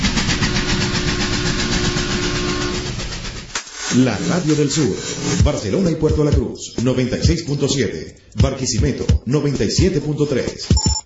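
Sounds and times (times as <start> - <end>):
train locomotive chugging sound effect: 0.0 - 5.6
speech: 3.9 - 11.0.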